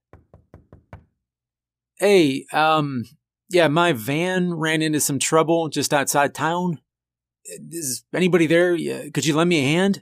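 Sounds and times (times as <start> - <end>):
knocking on a wooden door: 0.0 - 1.3
speech: 2.0 - 6.8, 7.4 - 10.0.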